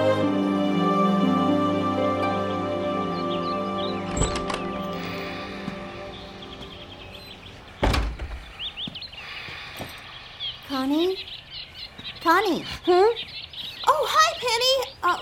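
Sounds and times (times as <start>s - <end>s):
birds chirping: 0.2s - 15.2s
heavy door-like thunks: 4.1s - 4.8s, 7.8s - 8.5s.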